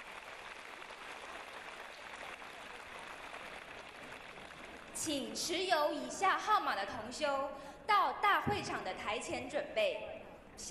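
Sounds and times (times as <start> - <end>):
sustained applause from a large crowd: 0.0 - 5.0
speech: 5.0 - 10.6.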